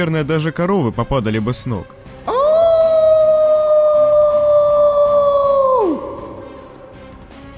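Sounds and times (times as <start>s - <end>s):
speech: 0.0s - 2.1s
loud wolf howl echoing in a tunnel: 2.3s - 6.5s.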